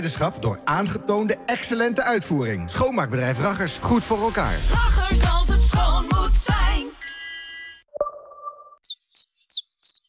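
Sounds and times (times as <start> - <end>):
speech: 0.0 - 7.0
chiffchaff sustained tones: 8.1 - 10.0
chiffchaff chirping: 8.8 - 10.0.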